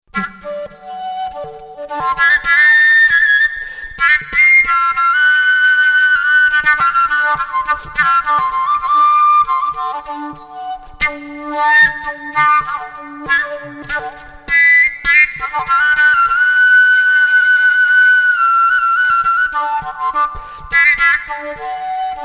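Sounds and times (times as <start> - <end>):
kalyuka flute in D: 0.0 - 22.2.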